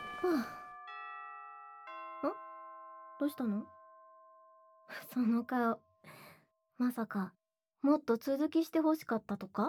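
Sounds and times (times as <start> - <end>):
person sighing or groaning: 0.0 - 0.6
school chime ringing in two bell-like tones: 0.0 - 4.7
speech: 0.2 - 0.6, 2.2 - 2.4, 3.2 - 3.8, 4.9 - 6.2, 6.8 - 9.6.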